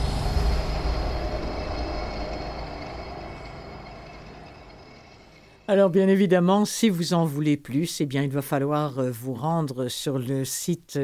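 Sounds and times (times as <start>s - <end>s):
metro train rumbling underground beneath a basement: 0.0s - 5.7s
speech: 5.7s - 11.0s.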